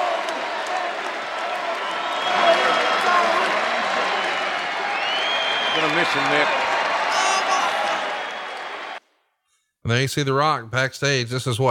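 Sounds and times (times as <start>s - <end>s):
arena crowd applause: 0.0s - 9.0s
large arena crowd roaring and cheering: 0.0s - 9.0s
speech: 5.9s - 6.6s, 9.9s - 11.6s.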